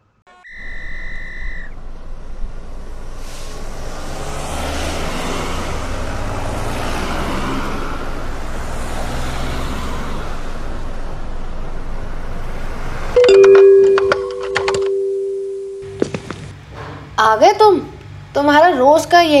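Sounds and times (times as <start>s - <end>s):
car engine starting and pulling away: 1.8s - 13.2s
brief tonal beep: 13.2s - 15.9s
speech: 17.4s - 19.3s.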